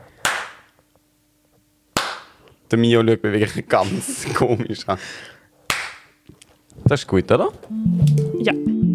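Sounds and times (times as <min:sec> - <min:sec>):
hand claps: 0:00.2 - 0:00.8, 0:02.0 - 0:02.4, 0:05.7 - 0:06.2
speech: 0:02.7 - 0:05.4, 0:06.9 - 0:08.8.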